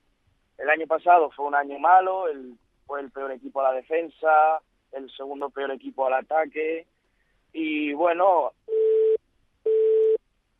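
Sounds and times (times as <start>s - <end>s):
speech: 0.6s - 6.9s, 7.5s - 8.9s
telephone line tone beeps after a dropped call: 8.7s - 10.2s.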